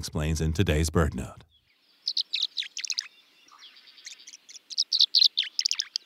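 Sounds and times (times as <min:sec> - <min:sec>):
speech: 0:00.0 - 0:01.5
tree swallow liquid call notes: 0:01.5 - 0:06.0.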